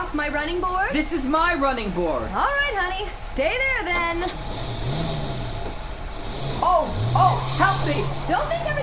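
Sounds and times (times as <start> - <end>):
road-like rumble and hiss: 0.0 - 8.8
speech: 0.1 - 4.9, 6.6 - 8.8
car engine revving then idling: 3.5 - 8.8.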